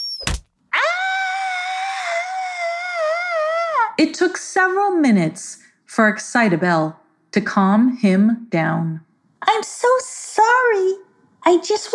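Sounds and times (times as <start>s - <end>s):
headlamp hitting the ceiling with a dull thump: 0.2s - 0.5s
person screaming in fright at a surprise party: 0.7s - 4.0s
speech: 4.0s - 11.9s.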